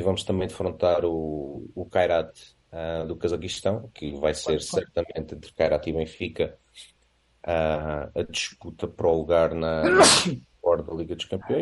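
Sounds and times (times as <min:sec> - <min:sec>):
speech: 0:00.0 - 0:11.6
loud sudden sneeze: 0:09.8 - 0:10.4.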